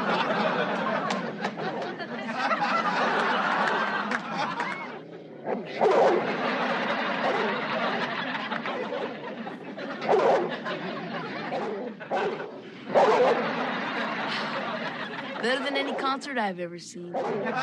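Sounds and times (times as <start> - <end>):
laughter: 0.0 - 16.4, 17.3 - 17.6
large guard dog barking and growling aggressively: 4.5 - 8.1, 10.0 - 10.7, 11.4 - 13.6, 17.1 - 17.6
speech: 15.6 - 17.6.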